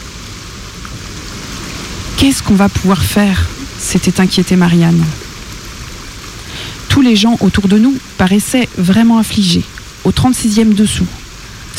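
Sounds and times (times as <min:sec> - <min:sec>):
steady rain pattering on surfaces: 0:00.0 - 0:11.7
speech: 0:02.2 - 0:05.2, 0:07.0 - 0:11.2.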